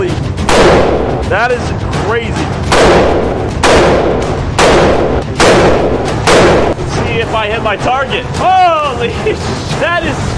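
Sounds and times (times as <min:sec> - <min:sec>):
semi-automatic AR-15 rifle gunshots: 0:00.4 - 0:01.2, 0:02.6 - 0:06.8
speech: 0:01.3 - 0:04.1, 0:07.2 - 0:10.3.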